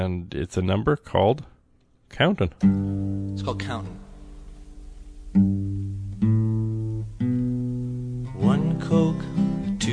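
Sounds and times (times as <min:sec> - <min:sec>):
speech: 0:00.0 - 0:01.5, 0:02.1 - 0:04.1, 0:05.3 - 0:05.8, 0:08.4 - 0:09.9
sustained keyboard chords in a home songwriting demo: 0:02.6 - 0:09.9.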